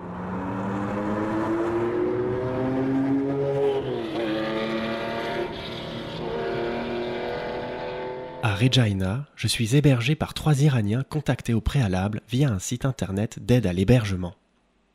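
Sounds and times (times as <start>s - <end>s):
Porsche car engine driving away: 0.0s - 8.4s
speech: 8.6s - 14.4s.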